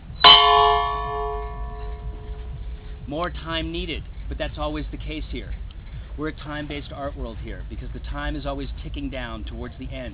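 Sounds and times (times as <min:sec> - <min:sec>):
gong struck to open a reading at a festival: 0:00.2 - 0:03.1
speech: 0:03.1 - 0:10.1.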